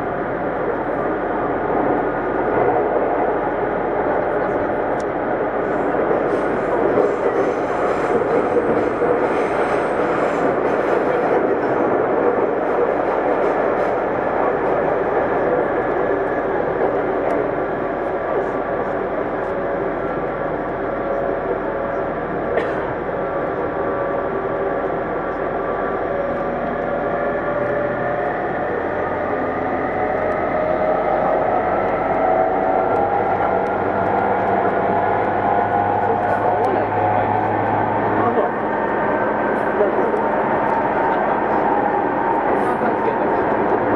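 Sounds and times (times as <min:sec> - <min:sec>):
rumble inside a moving commuter train: 0:00.0 - 0:43.9.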